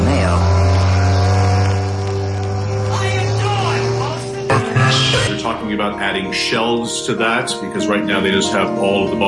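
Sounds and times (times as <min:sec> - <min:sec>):
boat engine droning: 0:00.0 - 0:06.9
speech: 0:06.0 - 0:09.2.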